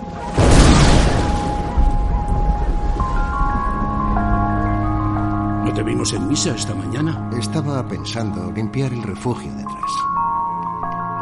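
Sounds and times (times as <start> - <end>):
thunder rumbling: 0.0 - 8.1
speech: 5.7 - 10.1.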